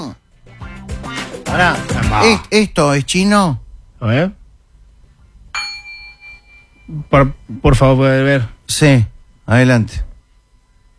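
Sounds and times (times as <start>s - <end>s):
speech: 1.5s - 4.4s, 6.9s - 10.1s
gong struck: 5.6s - 7.6s.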